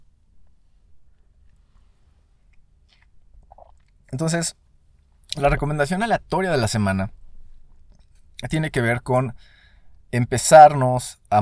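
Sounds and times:
low steady hum: 0.0s - 11.4s
person sipping coffee: 1.5s - 4.0s
soft mouth clicks: 2.5s - 4.1s
slurp and swallow: 2.8s - 4.0s
speech: 4.1s - 4.6s, 5.4s - 7.2s, 8.4s - 11.4s.

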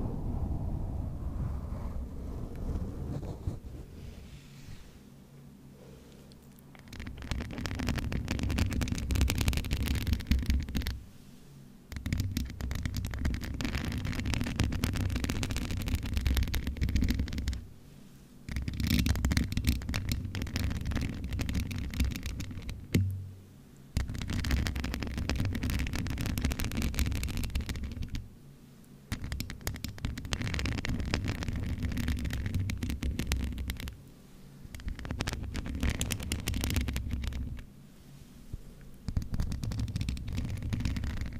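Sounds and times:
deep rumbling: 0.0s - 4.5s
scratching and rubbing on a microphone with and without a cover: 1.7s - 5.1s, 6.7s - 11.1s, 11.9s - 17.7s, 18.5s - 23.1s, 24.0s - 28.2s, 29.1s - 34.0s, 34.7s - 37.7s, 39.1s - 41.3s.

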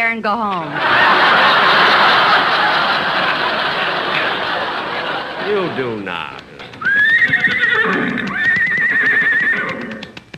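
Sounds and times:
speech: 0.0s - 1.4s, 5.5s - 6.4s
laughter: 0.7s - 7.9s
horse hooves clip-clopping: 6.2s - 10.3s
horse whinnying: 6.7s - 10.2s.

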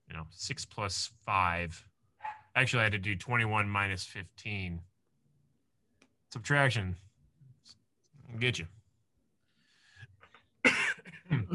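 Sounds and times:
speech: 0.2s - 1.9s, 2.6s - 4.9s, 6.3s - 8.8s, 11.3s - 11.5s
faint throaty sounds: 9.4s - 11.5s
harsh coughing fit: 10.6s - 11.5s.

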